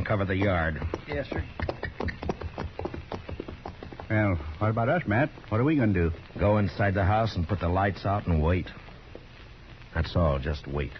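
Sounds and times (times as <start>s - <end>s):
horses' hooves clip-clopping as they're led to a barn: 0.0s - 8.2s
speech: 0.1s - 2.2s, 4.1s - 8.8s, 10.0s - 10.9s.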